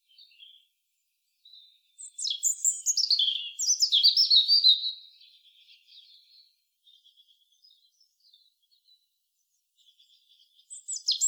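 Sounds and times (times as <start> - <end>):
European robin Erithacus rubecula twittering and whistling: 2.0 - 6.1, 10.6 - 11.2.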